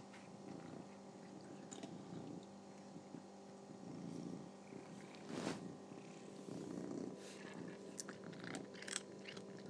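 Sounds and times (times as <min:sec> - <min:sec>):
cat purring: 0:00.0 - 0:09.6
cat crunching on biscuit treats: 0:07.4 - 0:09.6.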